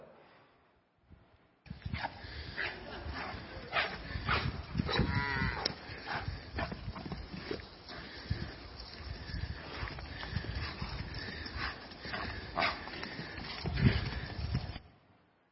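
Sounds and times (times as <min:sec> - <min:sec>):
calves' hooves clattering bursting out of a stall: 0:01.7 - 0:15.0
calves bleating moos: 0:04.8 - 0:06.0.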